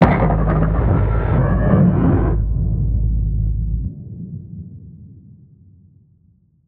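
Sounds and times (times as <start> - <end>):
alien turret: 0.0 - 4.0.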